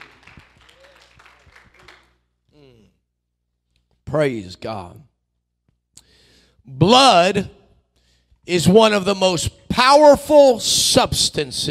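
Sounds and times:
seated church audience clapping in praise: 0.0 - 2.3
speech: 4.1 - 5.1, 6.7 - 7.6, 8.5 - 11.6.

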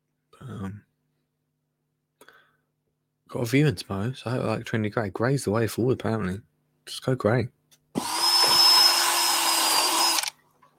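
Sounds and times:
speech: 0.4 - 0.9, 3.3 - 8.1
power drill drilling into bamboo before screwing: 8.0 - 10.4.

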